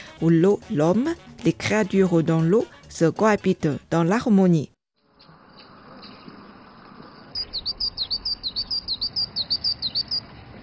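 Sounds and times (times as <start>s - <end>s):
speech: 0.2s - 4.7s
bird chirping at a water garden: 5.2s - 10.3s.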